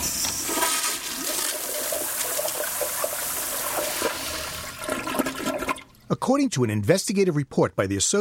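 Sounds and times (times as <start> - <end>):
toilet flushing: 0.0 - 6.1
speech: 6.1 - 8.1.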